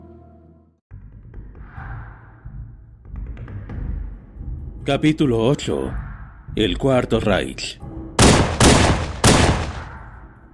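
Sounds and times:
speech: 0:04.8 - 0:06.0, 0:06.6 - 0:07.8
pistol shots and Kalashnikov automatic gunfire: 0:08.2 - 0:10.2.

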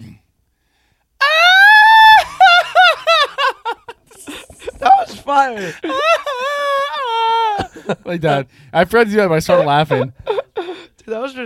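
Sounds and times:
loud high-pitched Mexican grito yell with warbling trilling bursts: 0:01.2 - 0:03.2, 0:04.3 - 0:07.7
laughter: 0:01.9 - 0:08.4, 0:09.3 - 0:10.9
speech: 0:05.3 - 0:06.2, 0:07.9 - 0:10.2, 0:11.1 - 0:11.4.

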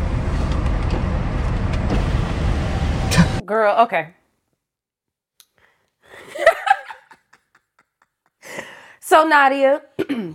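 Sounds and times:
running car engine rumble: 0:00.0 - 0:03.4
speech: 0:03.5 - 0:04.2, 0:09.1 - 0:10.3
laughter: 0:06.2 - 0:08.1.

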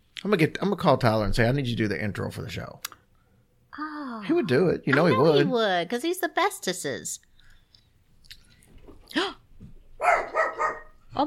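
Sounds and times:
speech: 0:00.2 - 0:03.0, 0:03.8 - 0:07.3
dog barking at a house: 0:10.0 - 0:11.0.

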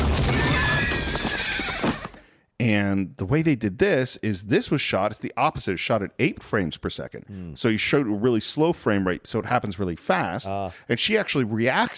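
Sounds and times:
horse whinnying while galloping: 0:00.4 - 0:02.2
speech: 0:02.6 - 0:11.9.

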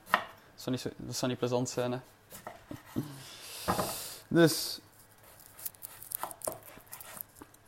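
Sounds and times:
speech: 0:00.6 - 0:04.8
knife shaving thin layers off food: 0:05.2 - 0:07.6.

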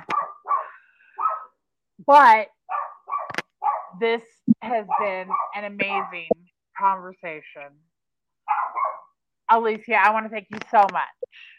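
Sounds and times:
dogs barking: 0:00.0 - 0:01.6, 0:02.7 - 0:04.0, 0:04.8 - 0:06.3, 0:08.4 - 0:09.2
speech: 0:02.1 - 0:02.6, 0:04.0 - 0:07.9, 0:09.5 - 0:11.5.

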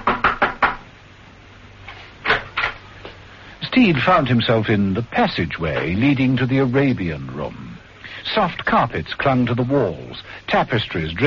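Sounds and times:
knocking on a wooden door: 0:00.0 - 0:00.8
speech: 0:03.7 - 0:07.6, 0:08.2 - 0:11.2.

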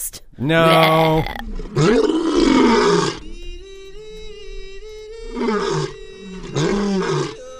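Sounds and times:
speech: 0:00.4 - 0:02.1
lion roaring: 0:00.6 - 0:03.2, 0:05.3 - 0:07.4
steady droning tone: 0:00.8 - 0:07.5.

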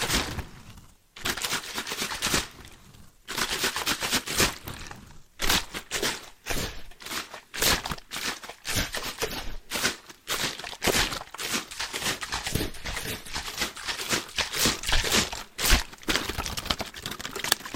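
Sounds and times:
plastic water bottles crinkling and crunching: 0:01.2 - 0:17.7
plastic water bottle tapping and shaking: 0:10.7 - 0:17.7.

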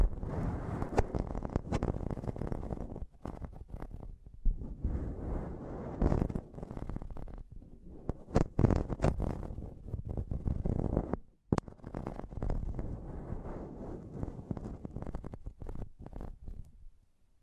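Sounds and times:
rough scratching and tapping on a microphone: 0:00.0 - 0:17.0.

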